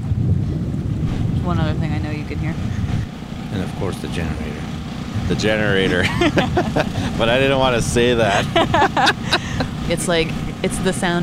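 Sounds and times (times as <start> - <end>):
wind outdoors by a lake with trees: 0.0 - 10.6
lake water outdoors: 0.8 - 11.2
speech: 1.5 - 11.2
laughter: 5.3 - 11.0.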